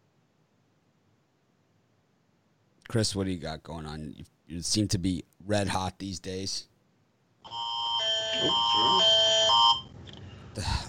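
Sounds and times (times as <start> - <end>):
speech: 2.9 - 6.7, 8.4 - 9.2, 10.6 - 10.8
fire alarm buzzing: 7.4 - 10.0.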